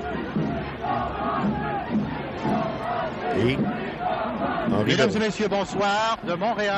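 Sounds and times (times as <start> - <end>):
large crowd chanting a slogan in unison at a night parade: 0.0 - 6.7
speech: 3.4 - 3.9, 4.7 - 6.7.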